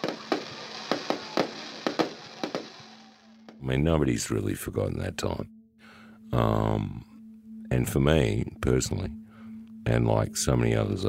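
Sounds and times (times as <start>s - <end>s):
fireworks exploding in celebration of an anniversary: 0.0s - 3.6s
hissing background: 0.0s - 11.0s
speech: 3.6s - 5.6s, 6.3s - 7.1s, 7.7s - 9.2s, 9.8s - 11.0s.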